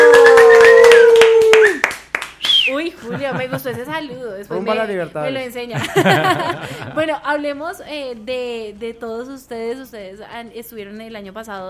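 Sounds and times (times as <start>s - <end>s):
applause welcoming a salsa band: 0.0s - 2.7s
laughter: 3.0s - 4.3s, 5.7s - 7.2s
speech: 3.6s - 11.6s.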